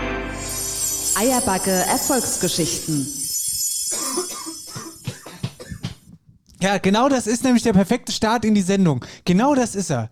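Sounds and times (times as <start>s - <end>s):
speech: 1.2s - 3.2s, 6.6s - 10.1s
man coughing harshly: 4.0s - 6.2s.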